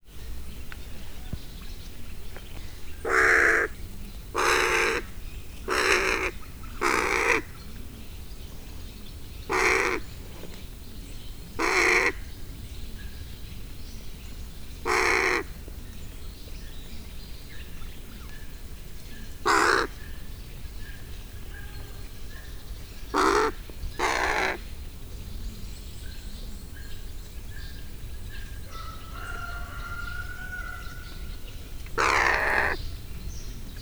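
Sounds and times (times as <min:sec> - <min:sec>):
hooded crow cawing while walking on the ground in a zoo: 0:03.0 - 0:03.7, 0:04.4 - 0:05.1, 0:05.7 - 0:07.5, 0:09.5 - 0:10.0, 0:11.6 - 0:12.2, 0:14.9 - 0:15.5, 0:19.4 - 0:20.0, 0:23.1 - 0:24.6, 0:28.7 - 0:31.1, 0:32.0 - 0:32.8.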